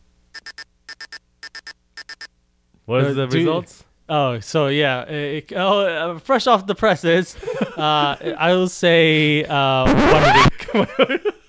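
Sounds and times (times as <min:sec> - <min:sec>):
bright electronic warning signal beeps: 0:00.4 - 0:02.3
speech: 0:02.9 - 0:11.3.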